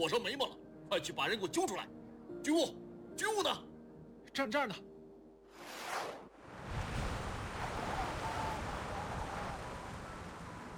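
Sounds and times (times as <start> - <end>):
speech: 0.0 - 3.7, 4.4 - 4.9
strong wind howling: 6.4 - 10.7.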